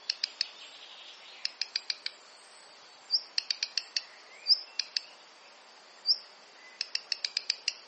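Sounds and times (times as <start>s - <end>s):
Black redstart sharp tick notes: 0.0s - 0.5s, 1.4s - 2.2s, 3.2s - 4.1s, 4.7s - 5.1s, 6.8s - 7.8s
light background noise: 0.0s - 7.8s.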